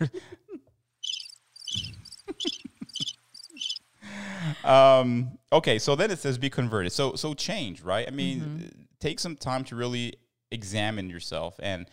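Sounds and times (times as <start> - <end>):
crickets chirping in quick bright pulses: 1.0 - 3.9
speech: 4.6 - 11.9.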